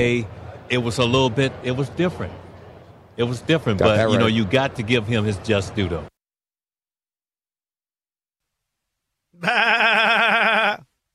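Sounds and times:
speech: 0.0s - 2.4s, 3.2s - 6.1s, 9.4s - 9.8s
goat bleating with quavering vibrato: 9.4s - 10.8s.

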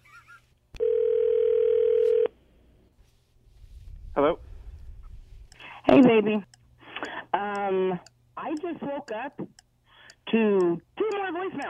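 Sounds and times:
ringback tone of an outgoing phone call: 0.8s - 2.3s
speech: 5.9s - 6.5s, 7.7s - 9.6s, 10.3s - 11.6s.

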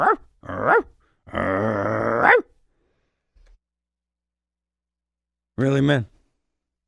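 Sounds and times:
speech: 0.0s - 0.2s, 5.6s - 6.2s
dog growling: 0.0s - 2.5s.

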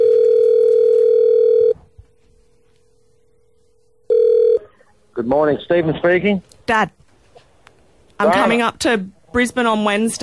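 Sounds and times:
telephone dial tone while a call is being placed: 0.0s - 1.8s, 4.1s - 4.6s
speech: 5.2s - 7.0s, 8.2s - 10.2s.

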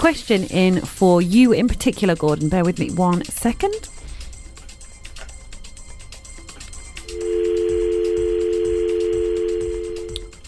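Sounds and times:
speech: 0.0s - 4.0s
phone line noise: 7.1s - 10.2s
steady telephone dial tone on a failing radio phone-in call: 7.1s - 10.2s.

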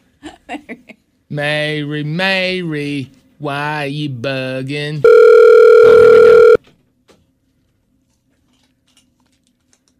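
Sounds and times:
speech: 0.5s - 5.2s, 5.8s - 6.4s
telephone ringing with a steady electronic tone: 5.0s - 6.6s.

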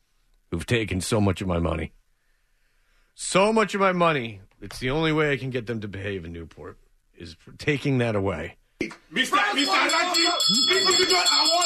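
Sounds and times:
speech: 0.5s - 2.0s, 3.2s - 11.6s
bell ringing with bright sustained high tones: 9.3s - 11.6s.

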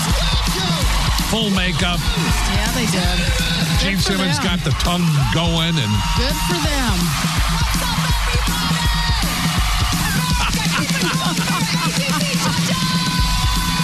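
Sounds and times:
booming live rock music: 0.0s - 13.8s
dense crowd screaming and cheering: 0.0s - 13.8s
laughter: 0.0s - 13.8s
speech: 1.3s - 8.8s.

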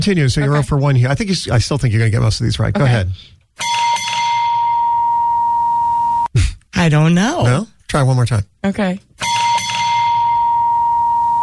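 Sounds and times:
speech: 0.0s - 3.7s, 6.8s - 9.1s
gas station driveway bell ringing as a car drives over the hose: 3.6s - 6.2s, 9.2s - 11.4s.

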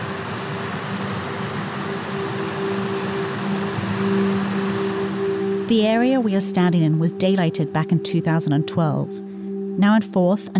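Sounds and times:
running river water rushing: 0.0s - 6.5s
speech: 5.7s - 9.2s, 9.8s - 10.5s.

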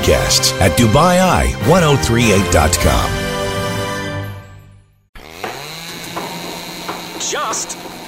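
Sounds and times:
speech: 0.1s - 3.2s, 7.5s - 7.8s
power drill whirring: 5.2s - 8.0s.

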